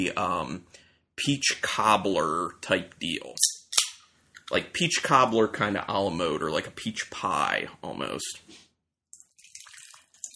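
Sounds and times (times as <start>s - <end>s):
speech: 0.0s - 3.5s, 4.5s - 8.6s
bourbon-barrel-aged ale with peach, apricot, cinnamon and vanilla pouring into a glass: 9.2s - 10.3s.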